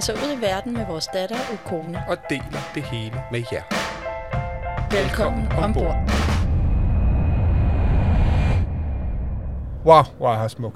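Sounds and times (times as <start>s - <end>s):
speech: 0.0s - 4.0s, 4.9s - 6.3s, 9.8s - 10.7s
car driving through Eswatini heard from inside the cabin: 4.6s - 10.1s.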